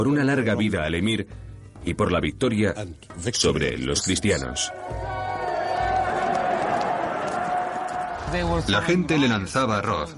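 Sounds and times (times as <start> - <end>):
speech: 0.0 - 5.2, 8.3 - 10.1
large crowd cheering and shouting: 4.6 - 8.9.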